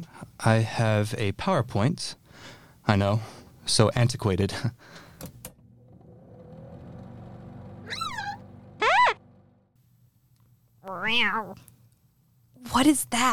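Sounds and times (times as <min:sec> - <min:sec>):
speech: 0:00.4 - 0:05.4, 0:11.1 - 0:11.7, 0:12.6 - 0:13.3
steady low engine-like hum: 0:05.5 - 0:09.8
human voice imitating wavering yowls of a cat in heat: 0:07.9 - 0:09.2, 0:10.8 - 0:11.6.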